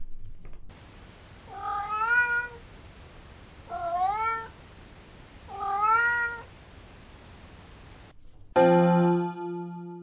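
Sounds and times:
cat meowing: 1.5 - 2.6, 3.7 - 4.6, 5.5 - 6.5
sharp tonal chime: 8.6 - 10.0.

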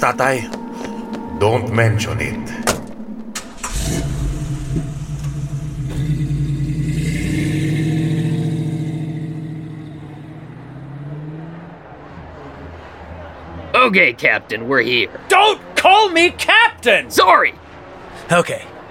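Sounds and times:
speech: 0.0 - 0.6, 1.4 - 2.8, 3.9 - 4.8, 13.9 - 17.6, 18.3 - 18.7
car engine starting: 2.5 - 13.7.

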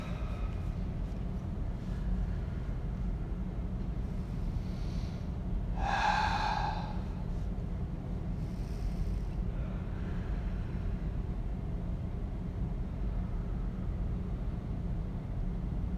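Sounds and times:
deep breaths in through the nose and out through the mouth during a guided meditation: 0.0 - 3.2, 4.0 - 11.4
steady low hum: 0.0 - 15.9
voiced sighing exhale: 5.8 - 7.3.

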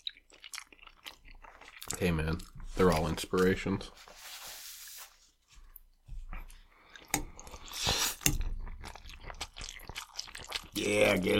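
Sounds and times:
chewing food: 0.0 - 3.7, 5.7 - 11.3
speech: 2.0 - 4.2, 10.9 - 11.3.

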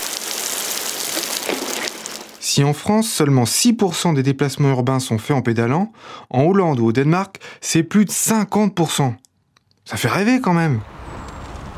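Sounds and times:
steady rain falling: 0.0 - 2.5
speech: 2.6 - 9.3, 9.9 - 11.0.

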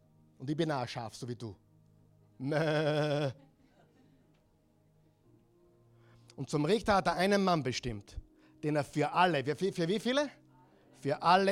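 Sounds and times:
speech: 0.4 - 1.6, 2.4 - 3.4, 6.4 - 10.4, 11.0 - 11.5
sheep bleating: 2.4 - 3.4.

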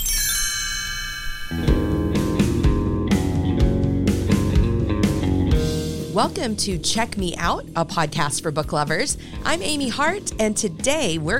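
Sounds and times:
bright shimmering chime as a page-turn cue: 0.0 - 2.0
music track with a steady beat: 1.5 - 11.3
speech: 6.2 - 11.3.

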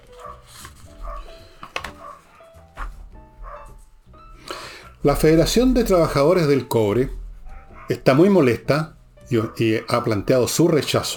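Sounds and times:
dogs barking frantically: 0.0 - 3.9, 7.4 - 8.4, 9.3 - 10.5
speech: 5.0 - 7.2, 7.9 - 11.1.

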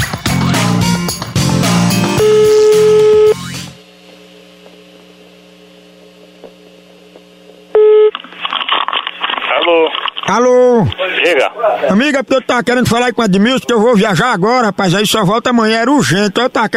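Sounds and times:
loud music: 0.0 - 3.8
humming telephone line tone with faint overtones: 2.2 - 3.4, 4.0 - 8.2
short high telephone beeps: 2.2 - 3.4
speech: 9.7 - 16.7.

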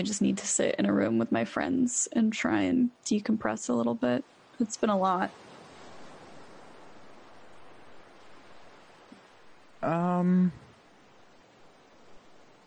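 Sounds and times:
speech: 0.0 - 5.5, 9.8 - 10.6
ocean surf: 3.7 - 12.6.

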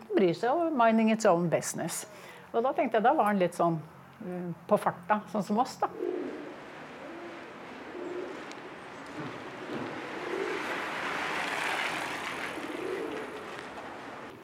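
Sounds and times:
outdoor street and traffic noise: 0.0 - 14.4
speech: 0.2 - 6.1
pigeon cooing: 5.8 - 11.5, 12.4 - 13.8.

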